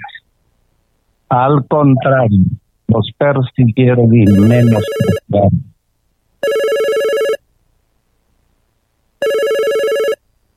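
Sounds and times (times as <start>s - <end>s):
speech: 1.3s - 5.7s
telephone ringing with bright electronic rings for an incoming call: 4.2s - 5.3s, 6.4s - 7.4s, 9.2s - 10.2s.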